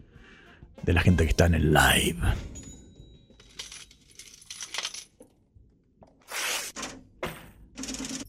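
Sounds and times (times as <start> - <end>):
speech: 0.8 - 2.5
metallic coins clinking and jingling: 3.3 - 5.3, 7.8 - 8.2.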